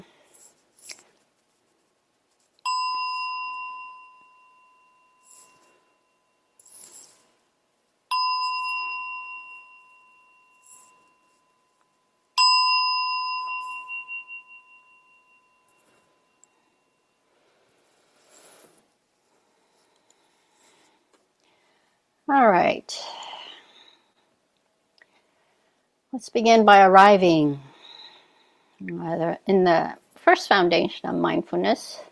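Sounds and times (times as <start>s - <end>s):
faint small noises: 0.0s - 32.1s
meditation bell struck to start a meditation session: 2.6s - 18.6s
speech: 22.3s - 23.1s, 26.2s - 27.7s, 28.8s - 32.1s.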